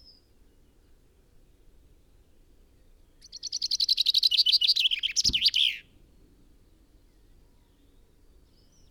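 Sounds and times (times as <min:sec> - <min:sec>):
Fringilla coelebs common chaffinch song: 0:03.2 - 0:05.9.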